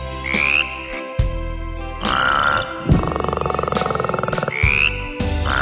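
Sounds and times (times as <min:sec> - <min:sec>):
frogs croaking in deep repeated calls: 0:00.2 - 0:01.1, 0:02.0 - 0:05.6.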